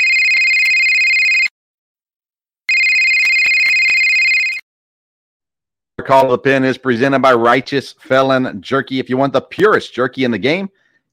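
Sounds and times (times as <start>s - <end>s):
electronic telephone ringing: 0.0s - 1.5s, 2.7s - 4.6s
speech: 6.0s - 11.1s.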